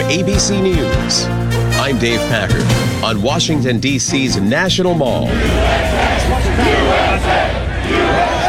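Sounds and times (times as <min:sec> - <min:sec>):
speech: 0:00.1 - 0:08.4
large outdoor crowd on the National Mall chanting and shouting: 0:05.0 - 0:08.4.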